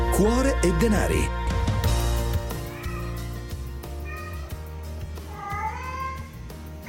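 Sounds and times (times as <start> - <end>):
speech: 0.2 - 1.4
cat meowing at home: 2.5 - 3.4, 4.0 - 4.6, 5.3 - 6.3.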